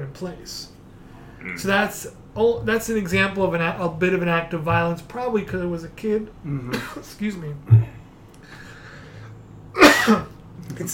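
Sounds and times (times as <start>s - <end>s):
speech: 0.1s - 0.8s, 1.4s - 7.9s
faint breathing: 0.9s - 1.5s, 7.7s - 9.6s
person with a dry throat coughing: 9.8s - 10.4s.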